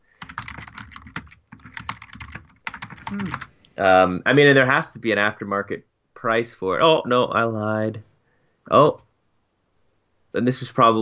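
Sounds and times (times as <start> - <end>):
typing on a computer keyboard: 0.1 - 3.5
faint voice murmuring: 3.0 - 3.5
speech: 3.1 - 8.1, 8.7 - 9.1, 10.3 - 11.0.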